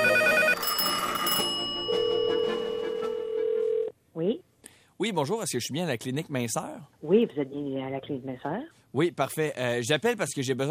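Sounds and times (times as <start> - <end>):
telephone ringing with bright electronic tones: 0.0 - 3.9
speech: 5.0 - 10.6.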